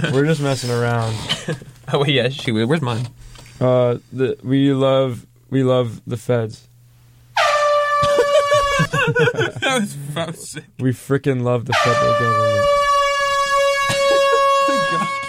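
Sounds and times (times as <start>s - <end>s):
speech: 0.0s - 6.7s, 8.8s - 12.8s
air horn blaring: 7.4s - 9.0s, 11.7s - 15.2s
laughter: 8.0s - 10.4s, 13.8s - 15.2s.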